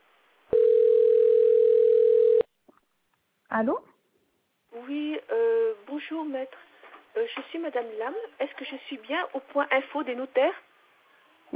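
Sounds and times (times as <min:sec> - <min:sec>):
telephone ringing tone while placing a call: 0:00.5 - 0:02.5
speech: 0:03.6 - 0:03.9, 0:04.9 - 0:10.7.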